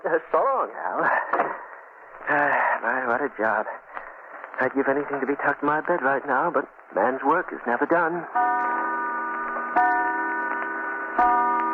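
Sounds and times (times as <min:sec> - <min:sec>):
speech: 0:00.0 - 0:01.7, 0:02.9 - 0:03.8, 0:04.6 - 0:08.5
clock striking three o'clock: 0:08.4 - 0:11.7.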